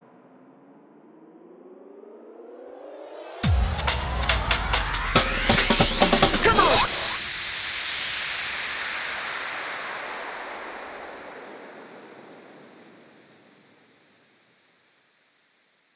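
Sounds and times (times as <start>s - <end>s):
hands up and trance drum fills: 3.3s - 10.3s.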